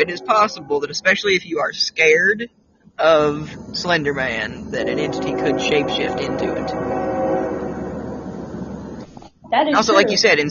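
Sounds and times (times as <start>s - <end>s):
train horn tone: 0.0s - 1.4s, 3.7s - 9.0s
train rumbling past: 0.0s - 2.3s, 3.0s - 9.2s
speech: 0.0s - 7.0s, 9.5s - 10.4s.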